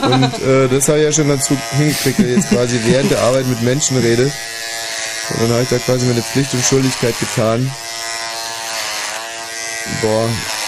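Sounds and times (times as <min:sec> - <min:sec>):
laughter: 0:00.0 - 0:00.6, 0:01.8 - 0:04.2
speech: 0:00.0 - 0:08.0, 0:09.9 - 0:10.5
electric shaver buzzing: 0:00.0 - 0:10.6.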